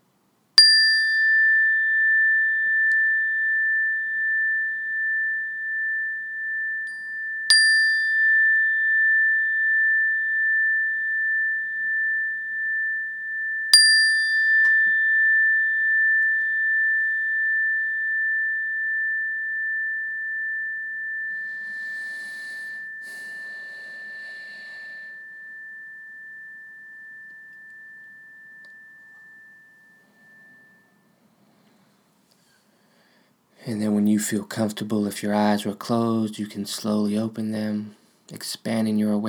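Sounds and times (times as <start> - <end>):
meditation bell struck and ringing: 0.6 - 32.0
speech: 33.7 - 39.2.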